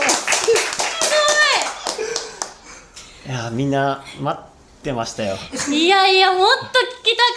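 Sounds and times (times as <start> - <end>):
scattered cheering voices: 0.0 - 2.6
audience applause of many hands clapping: 0.0 - 2.7
speech: 3.3 - 7.3.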